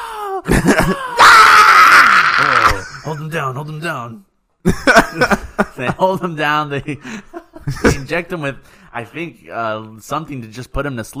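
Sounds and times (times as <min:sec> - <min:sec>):
voice imitating a man in hospital screaming hysterically: 0:00.0 - 0:03.1
speech: 0:00.6 - 0:01.1, 0:03.1 - 0:11.1.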